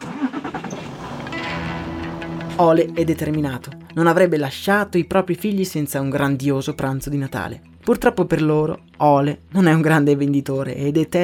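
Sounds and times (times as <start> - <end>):
truck engine cranking and idling: 0.0 - 3.0
speech: 2.6 - 11.2.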